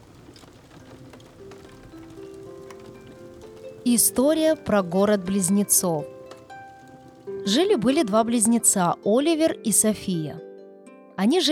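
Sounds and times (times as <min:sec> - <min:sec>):
steady rain pouring outside a window: 0:00.0 - 0:09.0
soft sustained musical tones: 0:00.0 - 0:11.5
speech: 0:03.9 - 0:06.2, 0:07.5 - 0:10.5, 0:11.2 - 0:11.5.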